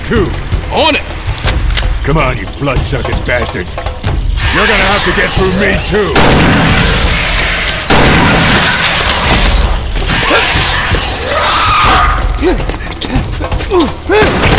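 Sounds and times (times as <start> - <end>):
speech: 0.1 - 1.2, 2.0 - 7.2, 12.4 - 12.7, 13.7 - 14.5
grenade explosions in a cavern battle: 4.1 - 12.2, 14.1 - 14.5
voices shouting: 4.2 - 14.5.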